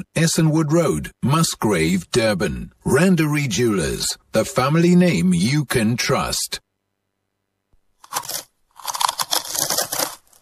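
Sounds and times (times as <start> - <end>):
speech: 0.0 - 6.6
potato chips being crunched in the mouth: 8.0 - 10.4.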